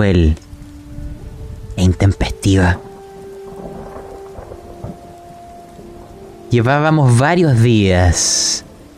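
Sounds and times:
speech: 0:00.0 - 0:00.4, 0:01.8 - 0:02.9, 0:06.5 - 0:08.7
steady pouring rain: 0:00.0 - 0:08.9.

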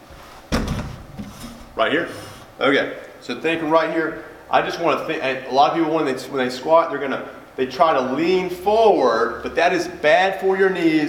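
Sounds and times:
chair scraping as it settles into place: 0:00.0 - 0:02.5
chair set down with a thump: 0:00.5 - 0:01.8
speech: 0:01.8 - 0:11.0.

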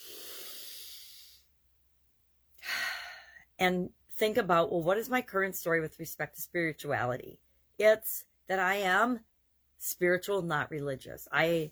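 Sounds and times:
deep breath taken during a guided breathing exercise: 0:00.0 - 0:01.5, 0:02.6 - 0:03.4
speech: 0:03.6 - 0:11.7.

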